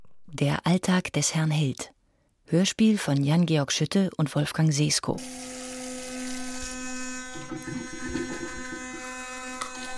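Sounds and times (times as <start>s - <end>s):
speech: 0.3s - 5.6s, 7.5s - 8.2s
electric toothbrush buzzing: 5.2s - 9.9s.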